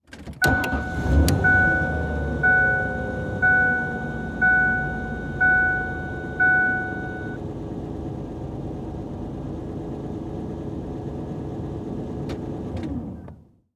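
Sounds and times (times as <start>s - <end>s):
Ford Ranger truck engine starting, idling and switching off, from the interior: 0.0s - 13.6s.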